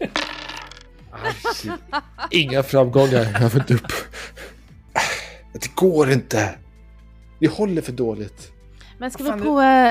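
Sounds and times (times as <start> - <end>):
seven dice clattering across a hard tabletop: 0.1 - 0.9
laughter: 1.1 - 4.4
speech: 1.3 - 4.2, 5.5 - 6.6, 7.4 - 9.9.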